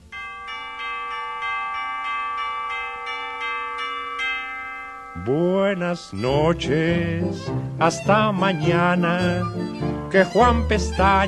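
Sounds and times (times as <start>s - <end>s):
bells ringing ding dong: 0.0s - 7.7s
speech: 5.2s - 11.2s.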